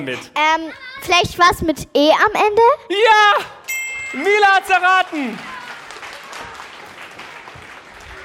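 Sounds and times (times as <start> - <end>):
speech: 0.0 - 5.5
small group clapping: 3.6 - 8.2.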